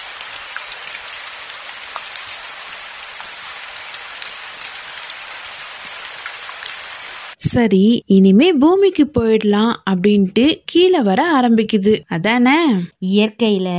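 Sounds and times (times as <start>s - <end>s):
steady rain falling: 0.0s - 7.4s
speech: 7.4s - 13.7s.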